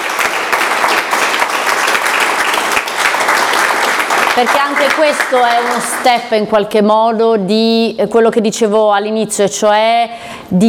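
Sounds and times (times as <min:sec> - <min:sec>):
crowd applauding: 0:00.0 - 0:06.2
speech: 0:04.4 - 0:10.6.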